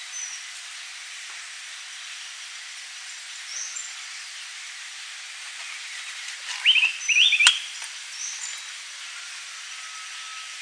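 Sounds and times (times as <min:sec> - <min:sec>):
soft background hiss: 0:00.0 - 0:10.6
bird singing warbled twittering phrases: 0:00.1 - 0:00.5, 0:03.5 - 0:04.5, 0:05.6 - 0:08.8.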